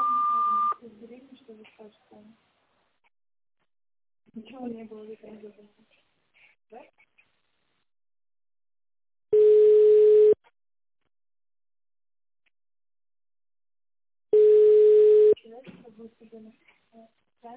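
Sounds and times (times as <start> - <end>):
lower-pitched telephone beep: 0.0 - 0.8
telephone beep tone on a sanatorium's phone line: 0.0 - 0.8, 9.4 - 10.4, 14.4 - 15.4.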